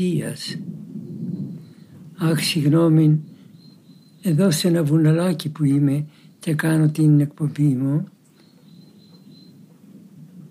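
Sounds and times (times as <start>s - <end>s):
speech: 0.0s - 0.8s, 2.2s - 3.3s, 4.2s - 8.2s
thunder rumbling during a rainstorm: 0.0s - 6.3s, 8.6s - 10.4s
faint thin insect chirp: 0.2s - 6.6s, 8.1s - 9.8s.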